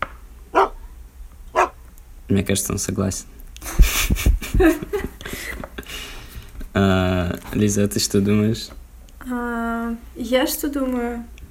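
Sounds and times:
quiet hum: 0.0s - 11.5s
dog barking: 0.5s - 0.8s, 1.5s - 1.8s
speech: 2.3s - 3.4s, 4.1s - 5.1s, 6.8s - 11.3s
laughter: 3.6s - 6.0s.

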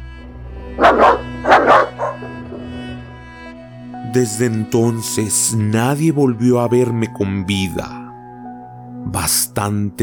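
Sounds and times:
dogs barking: 0.6s - 3.0s
speech: 4.1s - 8.0s, 9.1s - 10.0s.

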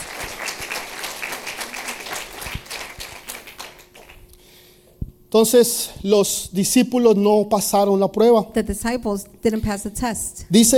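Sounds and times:
congregation applauding: 0.0s - 4.2s
speech: 5.3s - 10.7s.

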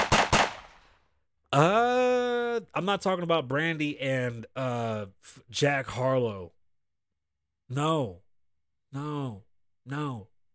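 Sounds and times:
gunshot sound effects: 0.0s - 0.9s
speech: 1.5s - 1.8s, 2.6s - 6.6s, 7.7s - 8.2s, 8.9s - 10.3s.

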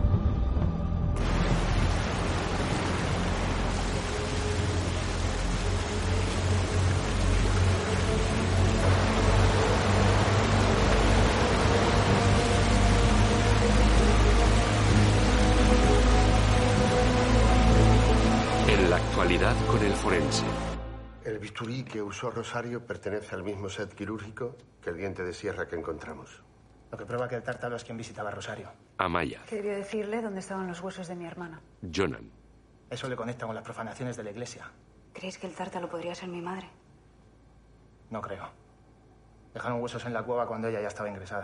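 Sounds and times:
torrential rain: 1.1s - 20.8s
rising river water rushing: 1.2s - 20.9s
speech: 21.4s - 36.8s, 38.1s - 38.6s, 39.6s - 41.4s.

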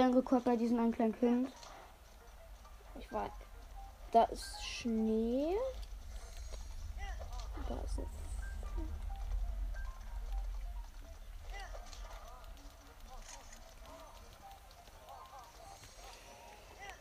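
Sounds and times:
speech: 0.0s - 1.6s, 3.0s - 3.5s, 4.1s - 5.8s, 7.6s - 8.2s
horse hooves clip-clopping at a trot in a video game: 0.0s - 16.9s
low rumbling background: 1.9s - 14.7s.

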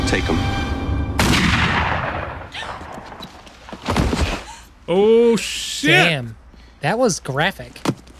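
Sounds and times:
speech: 0.1s - 0.6s, 4.9s - 7.9s
sniper rifle gunshot: 1.2s - 2.5s.

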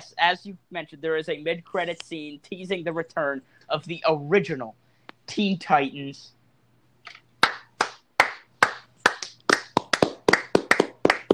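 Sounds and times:
speech: 0.0s - 6.4s
person clapping hands: 7.1s - 11.3s.

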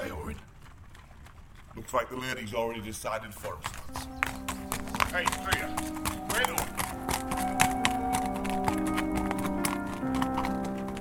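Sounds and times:
horse hooves clopping slowly across warped mold-shrouded wooden bridge planks: 0.0s - 10.9s
speech: 1.9s - 4.2s, 5.1s - 6.6s
low droning background: 3.9s - 10.9s.

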